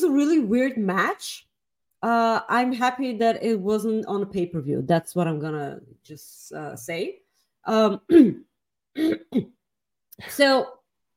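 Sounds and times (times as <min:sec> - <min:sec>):
speech: 0:00.1 - 0:09.6, 0:10.2 - 0:10.8
coughing and throat clearing: 0:08.0 - 0:09.7.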